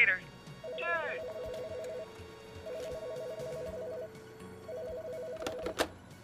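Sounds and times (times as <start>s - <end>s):
telephone ringing with a warbling trill: 0.0s - 5.8s.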